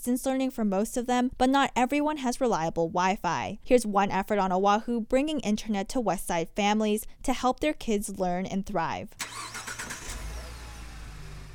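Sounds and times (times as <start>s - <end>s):
speech: 0.0s - 9.7s
van engine running: 9.2s - 11.5s.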